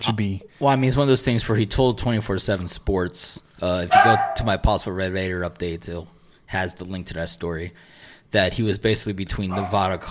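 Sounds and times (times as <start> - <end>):
speech: 0.0 - 10.1
dog barking and whimpering: 3.9 - 4.5, 9.5 - 10.0.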